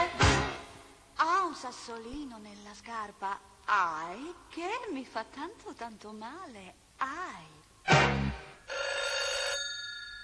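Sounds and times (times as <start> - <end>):
speech: 1.7 - 8.5
telephone bell ringing: 8.6 - 10.2.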